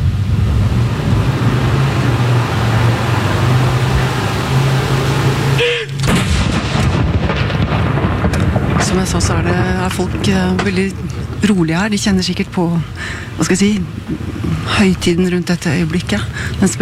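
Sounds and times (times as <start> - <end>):
steady low outdoor rumble: 0.0 - 16.8
ceremonial cannon salute shot at Akershus Fortress: 5.9 - 9.9
speech: 9.2 - 16.8.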